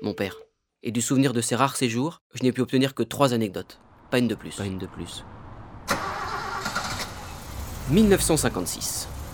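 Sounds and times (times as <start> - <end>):
speech: 0.0 - 5.3, 7.9 - 9.1
broken-down car engine cranking outside a train station: 5.8 - 9.3.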